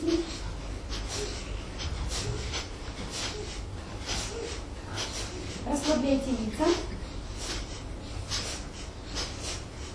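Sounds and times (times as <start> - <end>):
low hum: 0.0 - 9.9
rapid forceful yogic breathing with sharp nasal exhalations: 0.0 - 9.9
speech: 5.9 - 6.9.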